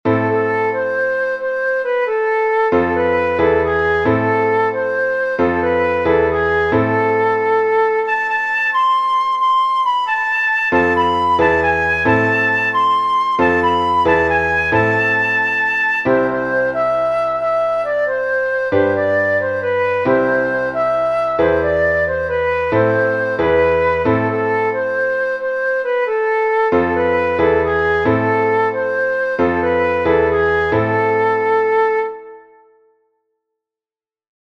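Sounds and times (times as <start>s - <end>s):
folk music: 0.1s - 32.4s.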